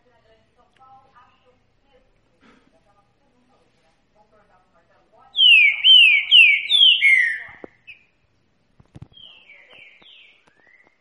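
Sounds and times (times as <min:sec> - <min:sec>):
Green-winged saltator singing in Bahian catingueiro style: 0:05.4 - 0:07.5.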